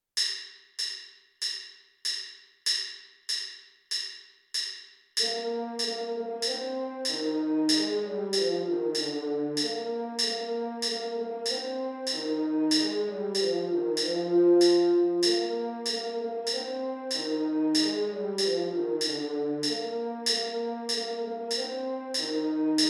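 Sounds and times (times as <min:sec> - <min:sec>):
French horn: 0:05.2 - 0:22.8.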